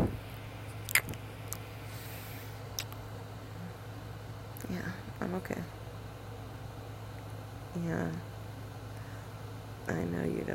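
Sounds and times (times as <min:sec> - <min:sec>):
low steady hum: 0:00.0 - 0:10.5
soft wet kissing sounds: 0:00.9 - 0:01.2
speech: 0:05.3 - 0:05.8, 0:07.8 - 0:08.3, 0:09.9 - 0:10.5.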